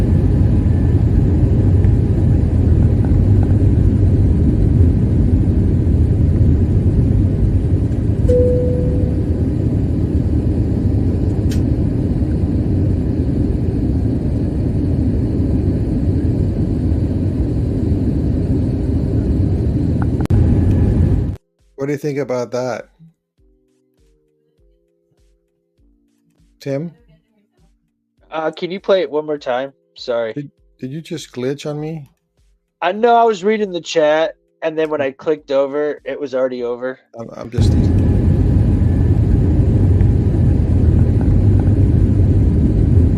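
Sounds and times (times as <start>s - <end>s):
airplane engine rumble filmed from another plane: 0.0s - 21.4s, 37.3s - 43.1s
faint brief tone: 8.3s - 9.4s
speech: 22.0s - 23.0s, 26.6s - 27.0s, 28.3s - 32.1s, 32.8s - 38.0s.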